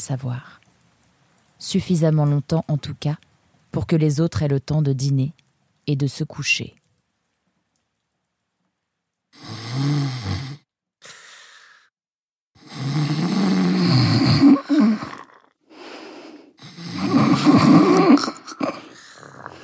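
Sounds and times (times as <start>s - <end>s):
speech: 0.0s - 0.6s, 1.6s - 6.8s
loud throaty snoring: 9.4s - 10.7s, 12.6s - 15.5s, 16.6s - 19.6s
quiet breaths: 11.0s - 11.9s, 14.6s - 17.0s, 18.0s - 19.6s.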